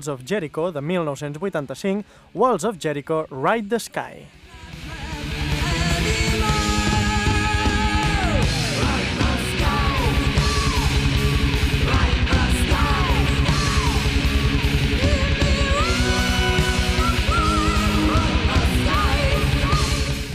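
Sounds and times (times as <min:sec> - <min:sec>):
speech: 0:00.0 - 0:04.4
distorted guitars: 0:02.6 - 0:20.3
shouted yelled metal vocals: 0:04.4 - 0:20.3
fast aggressive early European power metal song: 0:04.7 - 0:20.3.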